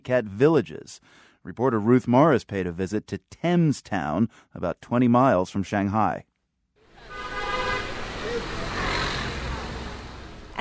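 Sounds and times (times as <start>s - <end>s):
speech: 0.0s - 6.3s
steady roar of busy street traffic in a Chinese city: 6.8s - 10.6s
car horns honking in city traffic in a Chinese city: 6.9s - 10.6s.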